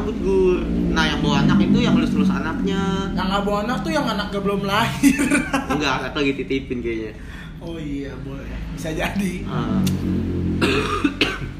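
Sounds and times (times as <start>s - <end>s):
steady low hum: 0.0s - 11.5s
speech: 1.7s - 11.3s
laughter: 4.9s - 6.0s
person coughing harshly: 10.6s - 11.5s.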